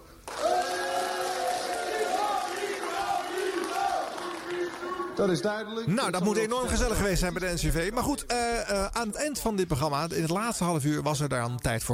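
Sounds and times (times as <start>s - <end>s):
studio audience cheering, applauding, shouting and whooping: 0.0s - 5.6s
speech: 5.2s - 11.9s.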